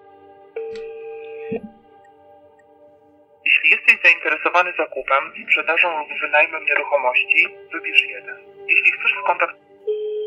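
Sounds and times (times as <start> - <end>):
telephone tone from a call to a real estate office: 0.6 - 1.7, 9.8 - 10.2
speech: 1.5 - 1.8, 4.0 - 9.6.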